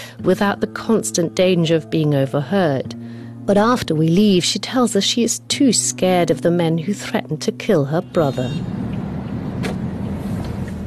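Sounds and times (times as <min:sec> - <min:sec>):
speech: 0:00.2 - 0:08.8
car driving through a crowded bazaar: 0:07.9 - 0:10.8.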